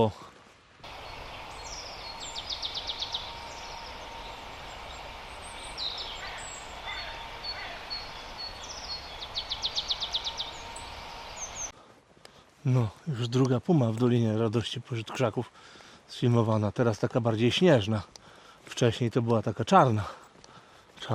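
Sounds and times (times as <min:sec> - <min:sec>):
speech: 0:00.0 - 0:00.3, 0:12.6 - 0:20.2
steady outdoor hiss: 0:00.0 - 0:21.1
marsh tit calls: 0:00.8 - 0:11.8
faint scattered chirps: 0:00.9 - 0:11.8.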